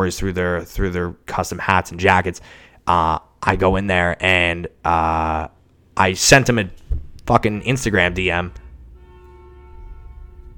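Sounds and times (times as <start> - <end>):
speech: 0.0 - 8.6
low rumbling traffic noise: 6.2 - 10.5
large vehicle horn blast: 8.6 - 10.5.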